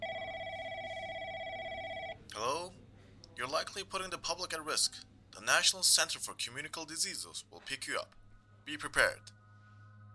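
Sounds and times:
telephone ringing with a warbling electronic tone: 0.0s - 2.2s
speech: 3.4s - 9.4s.

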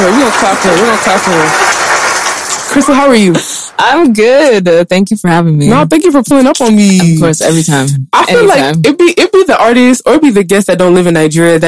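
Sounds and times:
excited voices talking and cheering: 0.0s - 2.9s
hand clapping applause: 0.0s - 3.2s
speech: 0.4s - 1.8s, 2.7s - 11.6s.

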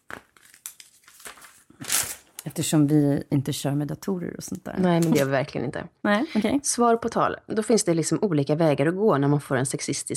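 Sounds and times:
paper being handled, rustling and crinkling: 0.0s - 2.4s
speech: 2.5s - 10.1s.

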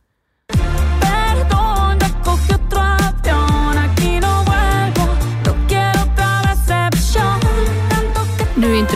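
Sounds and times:
Spanish-language pop revenge song with sung vocals: 0.5s - 8.9s
bouncing bassline: 0.6s - 8.9s.

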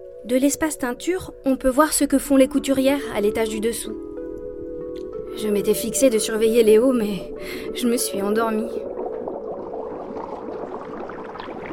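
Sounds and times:
speech: 0.2s - 4.1s, 5.4s - 8.9s
liquid bubbling and churning in a cauldron: 8.1s - 11.7s.

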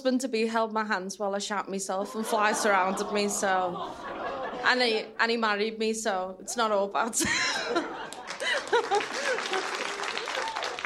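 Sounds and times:
speech: 0.0s - 8.0s
audience laughter: 2.1s - 5.0s, 7.2s - 10.5s
audience applauding: 8.0s - 10.8s
audience cheers: 8.3s - 10.8s.

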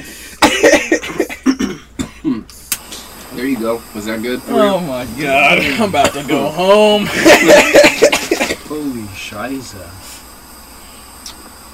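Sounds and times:
person gasping between coughs: 0.0s - 0.4s
person coughing hard after a dab hit: 0.4s - 2.5s, 7.1s - 8.7s
speech: 3.5s - 8.1s, 8.7s - 10.1s
laughter: 4.6s - 8.6s.

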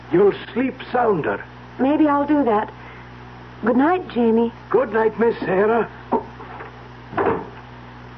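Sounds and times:
speech: 0.1s - 2.8s, 3.6s - 6.3s
wooden door thudding shut: 7.2s - 7.6s.

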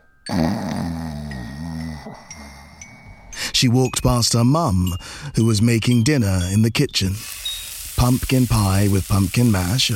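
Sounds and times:
man snoring while asleep in an armchair: 0.3s - 2.9s
speech: 3.6s - 7.4s, 8.0s - 9.9s.

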